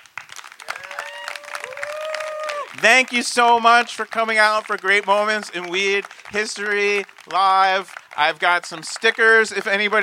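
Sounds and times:
audience applause: 0.0 - 10.0
audience cheers and whoops: 0.6 - 2.8
speech: 2.8 - 10.0.

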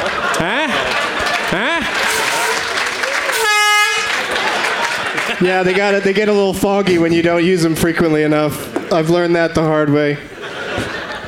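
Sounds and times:
laughter: 0.0 - 7.6, 10.1 - 11.2
crowd chatter in a noisy room: 0.0 - 11.2
loud air horn blast: 2.0 - 4.3
speech: 5.4 - 11.0.

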